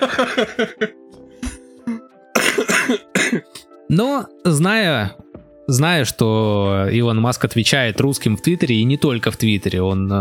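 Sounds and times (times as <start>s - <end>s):
laughter: 0.0s - 0.9s
speech: 0.0s - 1.0s, 3.9s - 10.2s
man coughing into microphone: 0.0s - 3.7s.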